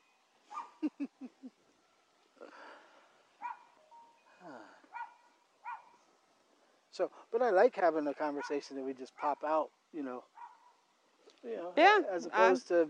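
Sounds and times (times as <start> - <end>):
small chihuahua yapping: 4.9 - 6.0
speech: 7.0 - 10.3, 11.4 - 12.8.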